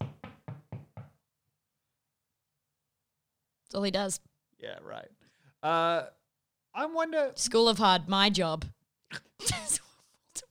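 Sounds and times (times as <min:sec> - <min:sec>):
firm knocks on a solid surface: 0:00.0 - 0:01.2
speech: 0:03.7 - 0:06.2, 0:06.8 - 0:09.8.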